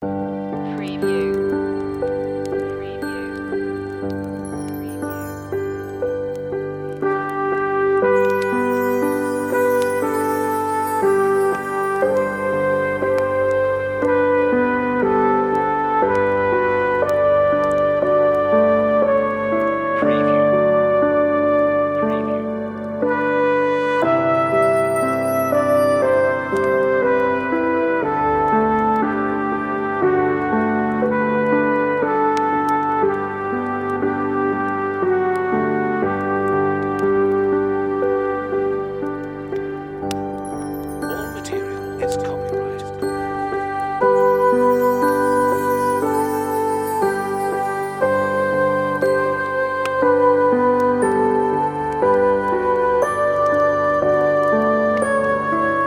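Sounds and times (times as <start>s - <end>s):
relaxing Christmas on-hold music: 0.0s - 55.8s.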